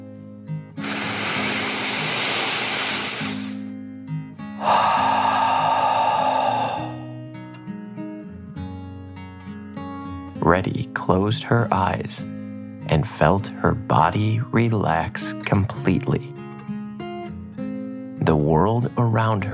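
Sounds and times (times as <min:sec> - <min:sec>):
deep calming dragon breath in and out: 0:00.8 - 0:03.7, 0:04.6 - 0:07.2
speech: 0:10.5 - 0:16.3, 0:18.3 - 0:19.5.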